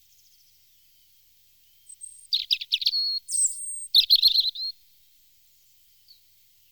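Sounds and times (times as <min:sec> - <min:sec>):
European robin singing: 0:00.0 - 0:04.8.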